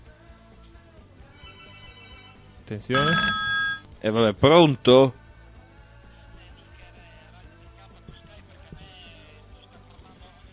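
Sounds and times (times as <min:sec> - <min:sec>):
telephone ringing with bright electronic ringtone: 0:01.4 - 0:03.8
speech: 0:02.7 - 0:05.2.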